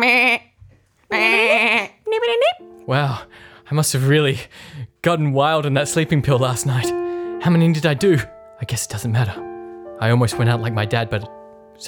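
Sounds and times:
human voice imitating a sheep alarm clock with bleats: 1.1 - 2.0
speech: 1.1 - 11.8.

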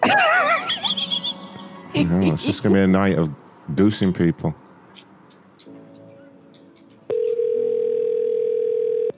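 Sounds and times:
laughter: 0.0 - 2.7
speech: 2.0 - 4.6
telephone dial tone after a call is disconnected: 7.1 - 9.1.

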